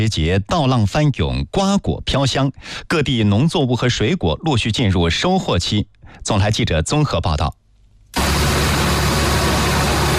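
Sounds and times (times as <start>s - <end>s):
speech: 0.0s - 7.6s
combine harvester running at full power, cutting and threshing in a ratoon rice field in Anhui: 8.2s - 10.1s.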